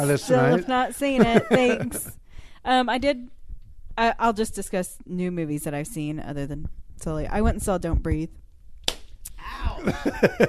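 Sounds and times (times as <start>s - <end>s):
laughter: 0.0s - 2.1s, 9.8s - 10.4s
speech: 0.0s - 3.4s, 4.0s - 8.4s, 9.4s - 10.4s
hand slapping a person: 8.8s - 9.1s.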